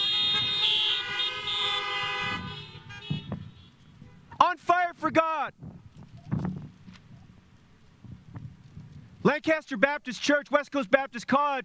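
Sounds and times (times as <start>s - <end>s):
car horns honking: 0.0s - 5.1s
speech: 5.0s - 5.7s, 9.3s - 11.6s.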